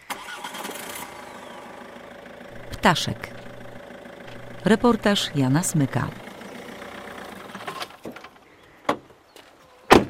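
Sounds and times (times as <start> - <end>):
car engine starting and running: 0.0 - 8.1
speech: 2.8 - 3.4, 4.6 - 6.2.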